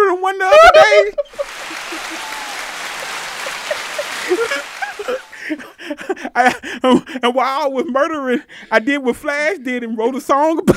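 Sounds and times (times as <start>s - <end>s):
scattered voices and whoops: 0.4s - 5.4s
laughter: 0.5s - 7.1s
crowd clapping: 1.3s - 5.6s
speech: 6.4s - 10.7s.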